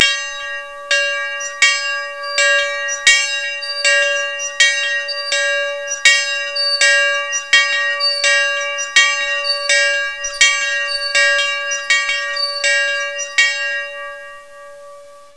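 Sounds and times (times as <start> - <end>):
long bell ring: 0.0 - 15.3.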